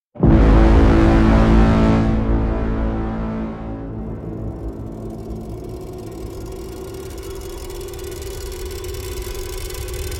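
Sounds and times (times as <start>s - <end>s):
low rumble: 0.2s - 10.1s
unstable rattling drone: 0.2s - 10.1s
metallic grainy crackling riser: 3.9s - 10.1s.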